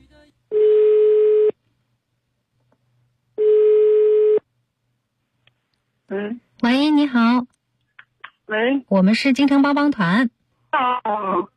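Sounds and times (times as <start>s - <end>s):
telephone ringback tone on a call being placed: 0.5s - 1.5s, 3.4s - 4.4s
speech: 6.1s - 7.6s, 8.5s - 11.5s.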